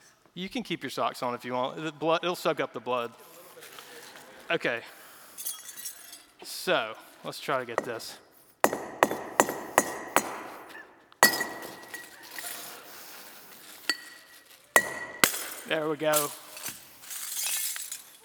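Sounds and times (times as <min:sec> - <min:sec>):
speech: 0:00.4 - 0:03.7, 0:04.5 - 0:05.5, 0:06.4 - 0:08.2, 0:15.7 - 0:16.4
glass smashing and shattering: 0:05.3 - 0:06.3, 0:11.2 - 0:12.7, 0:13.9 - 0:18.2
sharp knocks: 0:07.8 - 0:10.6, 0:14.8 - 0:15.5.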